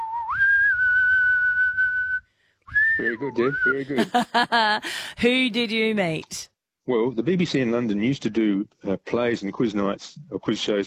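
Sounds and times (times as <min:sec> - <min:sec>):
person whistling one sustained rising note: 0:00.0 - 0:04.0
speech: 0:03.0 - 0:10.8
laughter: 0:03.8 - 0:05.2.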